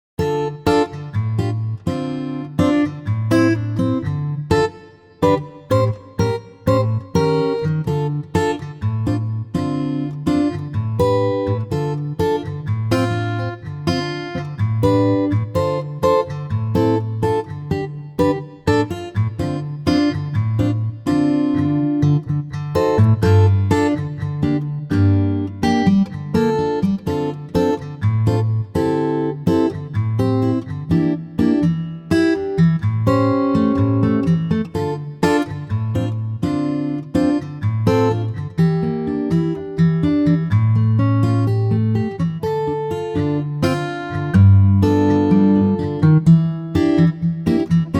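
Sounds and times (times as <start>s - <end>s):
acoustic guitar arrangement in D minor to E flat minor: 0.2s - 47.9s.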